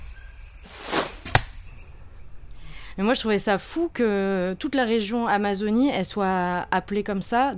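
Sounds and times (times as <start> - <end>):
arrows whooshing past: 0.7 - 1.5
speech: 3.0 - 7.5.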